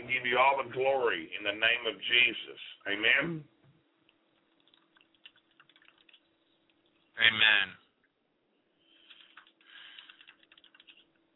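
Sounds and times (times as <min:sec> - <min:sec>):
faint low hum: 0:00.0 - 0:11.3
speech: 0:00.3 - 0:03.6, 0:07.2 - 0:07.8
computer keyboard typing: 0:04.4 - 0:07.1, 0:09.0 - 0:11.2.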